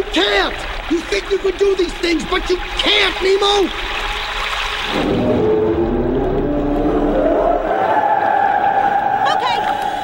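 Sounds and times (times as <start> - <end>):
deep watery rumble: 0.0 - 10.0
speech: 0.2 - 4.1
whale call: 5.0 - 10.0.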